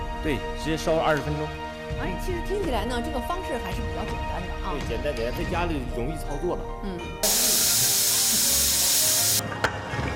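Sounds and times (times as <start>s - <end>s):
speech: 0.2s - 7.5s
pressure cooker releasing steam: 7.2s - 9.4s.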